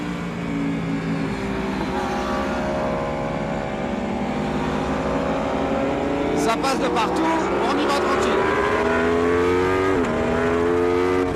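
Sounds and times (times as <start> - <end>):
V4 sport motorcycle engine revving on track: 0.0 - 11.3
speech: 6.5 - 8.5.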